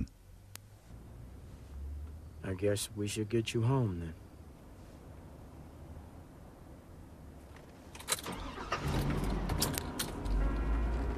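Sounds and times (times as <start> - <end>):
car engine rumbling as car drives off: 0.0 - 11.1
speech: 2.5 - 4.2
sharp clicks and rattles: 7.5 - 11.1.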